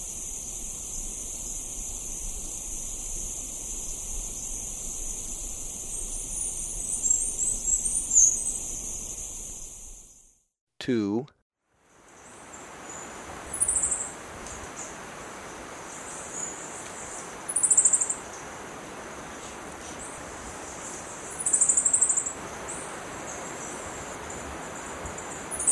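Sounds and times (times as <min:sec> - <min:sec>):
Olive Finch singing high-pitched sibilant trills in Ecuador: 0:00.0 - 0:10.2
faint hiss: 0:00.0 - 0:10.3, 0:11.9 - 0:25.6.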